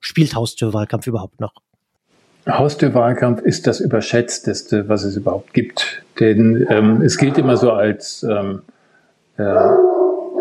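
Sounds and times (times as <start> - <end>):
speech: 0.2 - 1.7, 2.4 - 8.8, 9.4 - 10.0
dog bark-howl chasing away another dog: 9.4 - 10.3.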